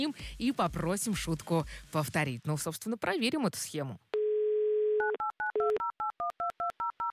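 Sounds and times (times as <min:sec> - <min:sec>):
speech: 0:00.0 - 0:04.1
phone dial tone: 0:04.2 - 0:07.1.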